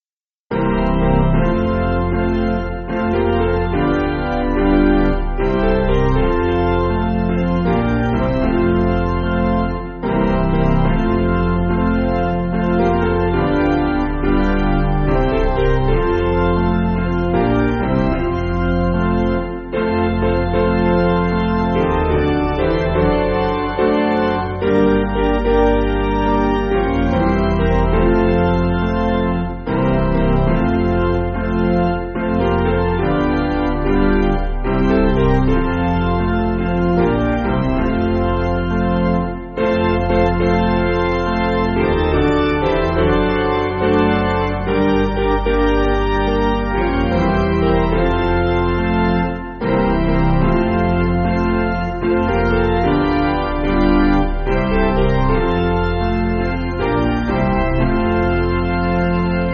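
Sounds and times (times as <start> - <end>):
Zulu melody on piano: 0.5 - 59.5.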